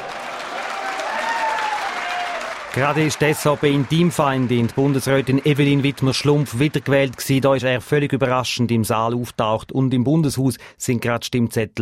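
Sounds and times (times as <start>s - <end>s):
political party members applauding in a Bern hotel hall: 0.0s - 8.1s
speech: 2.8s - 11.8s.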